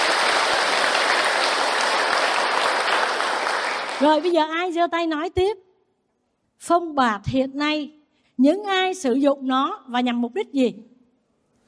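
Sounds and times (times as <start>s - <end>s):
audience applause at a Buddhist dharma talk: 0.0s - 4.3s
speech: 4.0s - 5.6s, 6.6s - 10.9s.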